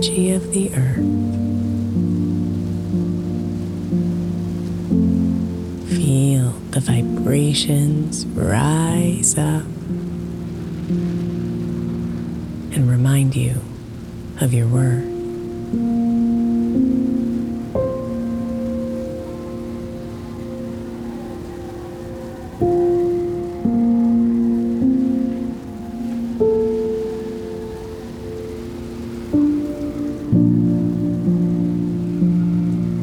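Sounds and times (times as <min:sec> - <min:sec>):
speech: 0:00.0 - 0:01.6, 0:06.8 - 0:09.8, 0:13.0 - 0:13.6, 0:14.4 - 0:15.1
soft sustained musical tones: 0:00.0 - 0:33.0
steady rain pattering on surfaces in a rainstorm: 0:00.0 - 0:33.0.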